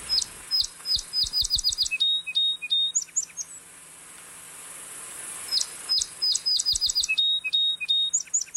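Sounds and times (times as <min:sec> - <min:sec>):
song sparrow singing: 0:00.0 - 0:03.6, 0:05.5 - 0:08.5.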